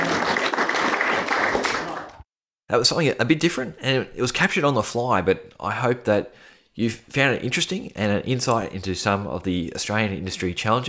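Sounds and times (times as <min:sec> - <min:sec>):
crowd applauding: 0:00.0 - 0:02.2
speech: 0:02.7 - 0:10.8.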